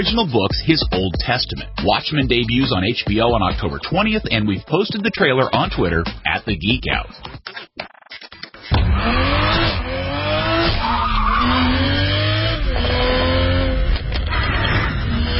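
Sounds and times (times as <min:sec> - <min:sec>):
speech: 0:00.0 - 0:07.9
Toyota Supra sports car engine drone: 0:08.7 - 0:15.3
tires squealing on a new Toyota Supra sports car: 0:08.8 - 0:15.3.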